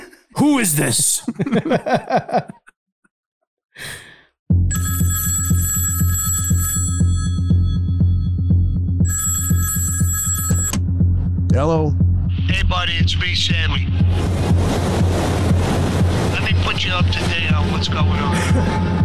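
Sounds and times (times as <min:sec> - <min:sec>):
speech: 0:00.4 - 0:02.6, 0:11.6 - 0:15.7, 0:16.5 - 0:19.0
laughter: 0:01.0 - 0:02.7, 0:18.1 - 0:19.0
telephone ringing with a trilling bell: 0:04.7 - 0:10.8
rushing noise: 0:13.8 - 0:19.0.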